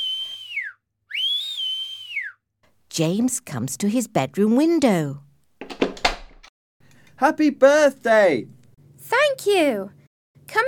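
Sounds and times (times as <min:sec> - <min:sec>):
person whistling from an open bedroom window: 0:00.0 - 0:02.4
speech: 0:03.0 - 0:05.3, 0:07.2 - 0:10.6.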